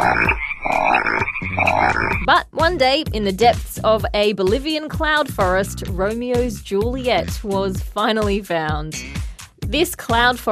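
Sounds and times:
Sehuencas water frog croaking: 0.0 - 2.3
speech: 2.3 - 10.5.

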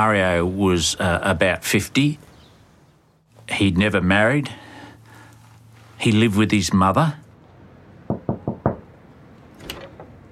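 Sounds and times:
speech: 0.0 - 2.3, 3.5 - 4.6, 6.0 - 7.2
knocking on a front door: 8.1 - 9.0.

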